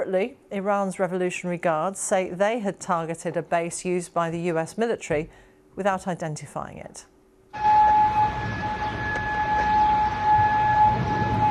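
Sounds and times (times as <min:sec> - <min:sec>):
speech: 0:00.0 - 0:07.1
air raid siren wailing over a city: 0:07.5 - 0:11.5.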